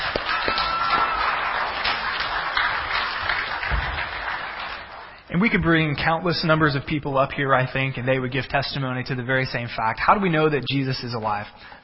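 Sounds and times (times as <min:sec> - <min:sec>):
crowd applauding: 0:00.0 - 0:05.3
speech: 0:05.4 - 0:11.8.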